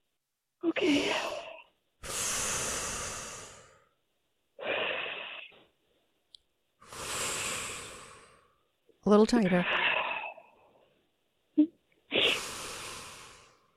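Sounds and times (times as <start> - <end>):
speech: 0.7 - 1.4, 9.1 - 9.8
slow deep breathing during a hug: 1.0 - 4.0, 6.8 - 8.8, 9.6 - 11.0, 12.2 - 13.7.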